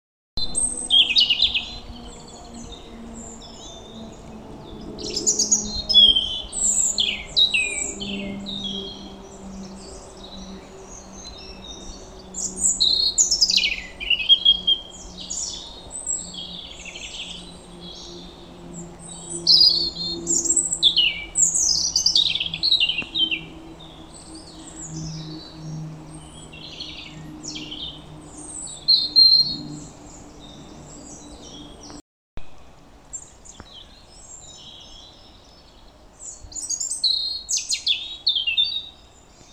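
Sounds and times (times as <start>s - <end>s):
European robin singing: 0.4s - 39.5s.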